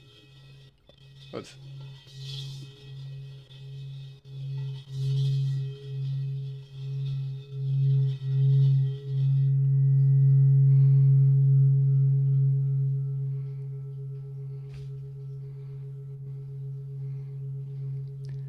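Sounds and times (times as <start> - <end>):
faint scraping hiss of bowl strokes: 0.0 - 9.3
singing bowl rubbed and humming: 0.0 - 18.4
speech: 1.3 - 2.4.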